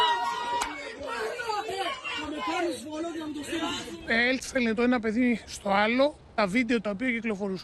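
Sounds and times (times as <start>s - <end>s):
crowd of children shouting and cheering at a school fight: 0.0s - 4.1s
speech: 2.6s - 7.6s.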